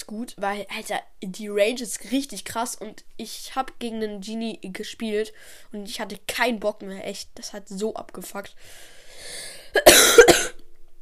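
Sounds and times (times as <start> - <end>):
speech: 0.1 - 10.2
person coughing harshly: 9.7 - 10.6.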